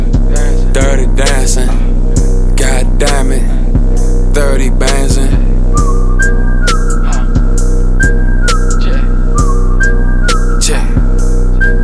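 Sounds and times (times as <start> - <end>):
loud dense beat with heavy bass and sharp percussive hits: 0.0 - 11.8
short shrill whistle tones in music: 5.6 - 11.8.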